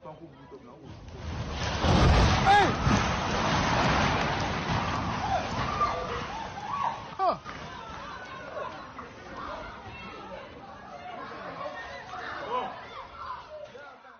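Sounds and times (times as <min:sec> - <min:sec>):
three-story building collapsing into dust: 0:00.9 - 0:09.0.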